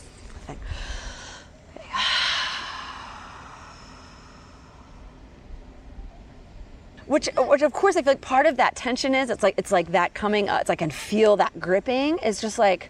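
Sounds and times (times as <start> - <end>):
deep breath drawn in and let out: 0.6 - 5.4
speech: 7.1 - 12.8.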